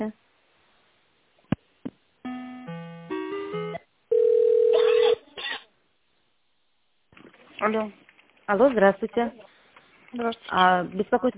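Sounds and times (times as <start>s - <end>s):
speech: 0.0s - 0.2s, 7.6s - 9.5s, 10.1s - 11.3s
long steady telephone line tone: 2.3s - 5.2s.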